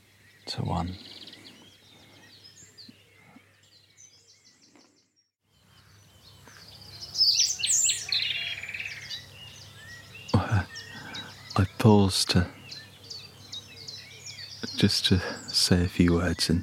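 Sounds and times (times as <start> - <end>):
nightingale singing at dawn: 0.0 - 16.6
other birds calling faintly: 0.0 - 16.6
speech: 0.5 - 1.2, 11.9 - 12.6, 14.8 - 16.6.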